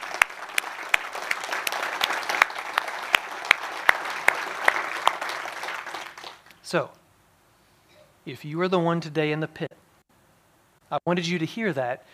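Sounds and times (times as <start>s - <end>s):
congregation clapping during a church service: 0.0s - 6.6s
speech: 6.7s - 7.0s, 8.2s - 9.7s, 11.0s - 12.1s.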